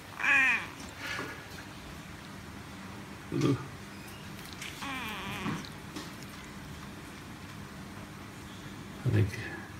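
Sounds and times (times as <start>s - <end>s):
low steady hum: 0.0s - 9.7s
neutered male cat meowing and yowling: 0.2s - 0.9s, 4.6s - 5.7s.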